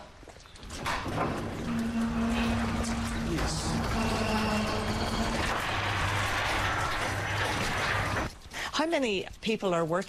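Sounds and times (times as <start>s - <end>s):
roller door rattling open: 0.8s - 8.3s
steady grinding hum: 1.0s - 8.4s
speech: 8.8s - 10.0s.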